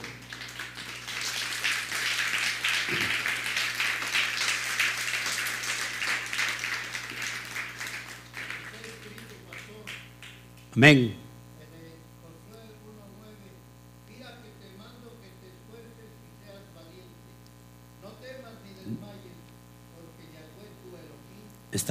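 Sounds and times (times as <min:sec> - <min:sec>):
audience applause at a religious service: 0:00.0 - 0:10.4
speech: 0:10.8 - 0:11.2.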